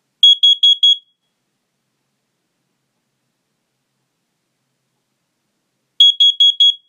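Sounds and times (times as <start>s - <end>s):
CO alarm: 0.2s - 1.3s, 6.0s - 6.8s.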